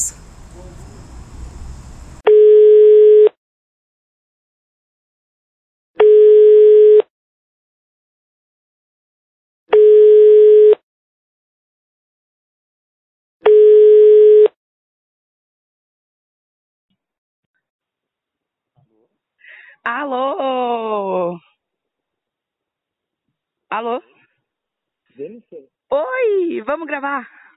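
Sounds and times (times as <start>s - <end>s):
low noise burst: 0.0s - 2.2s
telephone ringback tone while a call is being placed: 2.3s - 3.3s, 6.0s - 7.0s, 9.8s - 10.8s, 13.5s - 14.5s
speech: 19.9s - 21.5s, 23.7s - 24.1s, 25.2s - 27.4s.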